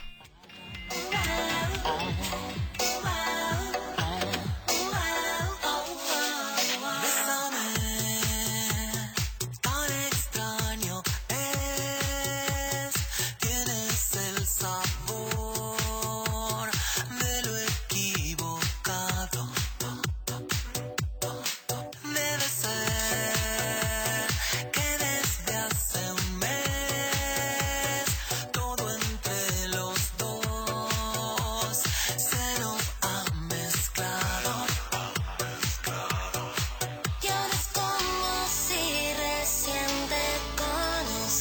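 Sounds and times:
steady pulsing beat: 0.0s - 6.8s, 7.8s - 21.9s, 22.8s - 40.8s
bright synth chords: 0.0s - 9.2s, 22.8s - 41.3s
singing voice: 0.0s - 41.3s
upbeat pop song cover version playing on the radio: 0.0s - 41.3s.

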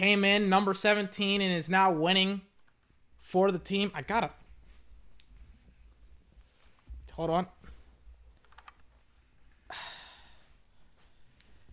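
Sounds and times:
speech: 0.0s - 2.5s, 3.2s - 4.4s, 7.2s - 7.6s
typing on a computer keyboard: 8.4s - 8.8s.

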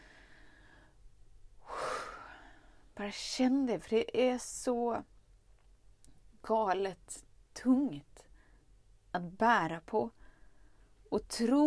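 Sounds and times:
deep breath: 0.0s - 2.9s, 10.2s - 11.0s
speech: 3.0s - 5.1s, 6.4s - 8.3s, 9.2s - 10.2s, 11.1s - 11.6s.

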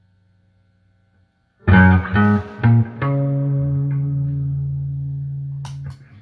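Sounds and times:
electric guitar through amp with reverb: 1.6s - 6.1s
small click: 5.6s - 6.1s.

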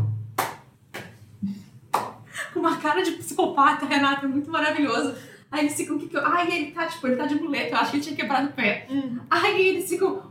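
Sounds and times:
slow deliberate hand clapping: 0.3s - 1.2s, 1.9s - 2.2s
speech: 2.6s - 10.2s.

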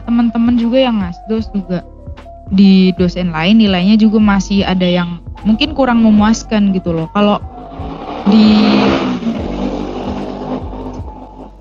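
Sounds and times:
speech: 0.2s - 1.9s, 2.5s - 7.5s, 8.2s - 8.8s
motorcycle engine revving outside: 6.1s - 11.5s.

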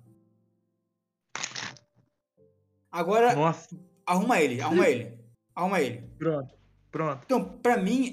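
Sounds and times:
deck of playing cards sprung messily between the hands: 1.4s - 1.9s
speech: 2.9s - 8.1s.

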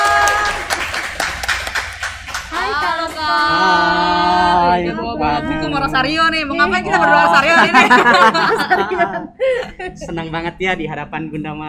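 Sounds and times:
small group applauding to welcome a guest: 0.0s - 4.3s
speech: 5.4s - 11.6s
laughter: 6.6s - 10.2s.

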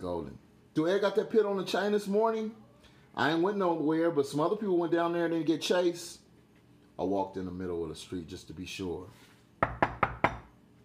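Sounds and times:
speech: 0.0s - 2.6s, 3.2s - 6.2s, 7.0s - 9.7s
knocking on a door: 9.6s - 10.5s.

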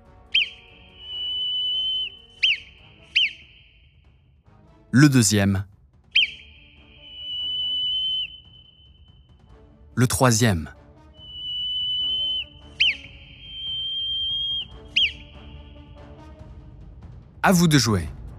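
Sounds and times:
whistled Morse code message of short and long whistle tones: 0.0s - 4.2s, 5.0s - 16.2s
speech: 4.9s - 5.7s, 10.0s - 10.8s, 17.5s - 18.2s.

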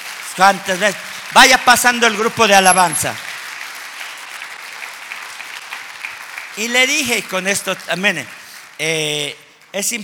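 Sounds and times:
church audience applauding: 0.0s - 10.0s
speech: 0.4s - 3.3s, 6.6s - 10.0s.

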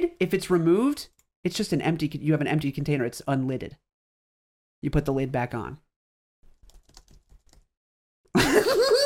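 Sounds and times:
speech: 0.0s - 3.9s, 4.8s - 5.8s
soft computer keyboard clicks: 6.6s - 7.7s
loud wavering laugh-like vocal sound: 8.4s - 9.0s.

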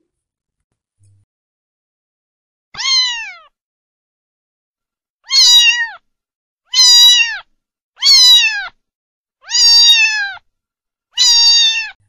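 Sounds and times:
cat meowing: 2.8s - 3.6s, 5.2s - 6.0s, 6.7s - 8.8s, 9.4s - 10.4s, 11.2s - 12.0s.

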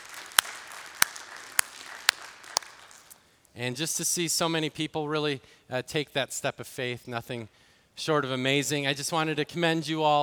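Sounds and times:
sharp claps in a church: 0.0s - 3.2s
speech: 3.6s - 10.2s.

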